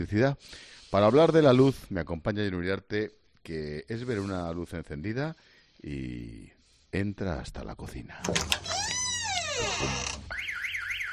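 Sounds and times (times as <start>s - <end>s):
speech: 0.0s - 8.9s, 9.6s - 10.4s
electronic security alarm set off when someone walks in: 10.3s - 11.1s.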